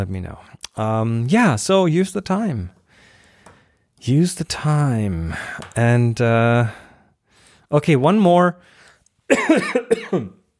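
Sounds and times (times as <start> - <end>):
speech: 0.0 - 2.8, 4.0 - 6.8, 7.7 - 10.4
harsh throaty coughs: 9.3 - 10.4.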